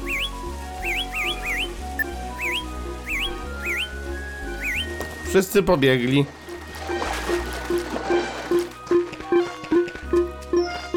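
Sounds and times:
bright whistle chirping in quick upward sweeps: 0:00.0 - 0:05.3
steady low musical background: 0:00.0 - 0:10.9
speech: 0:05.3 - 0:06.4.

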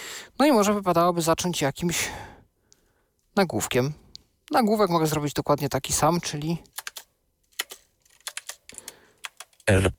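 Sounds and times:
speech: 0:00.4 - 0:02.3, 0:03.4 - 0:06.7, 0:09.7 - 0:09.9
crisp computer keyboard typing: 0:06.6 - 0:09.8.

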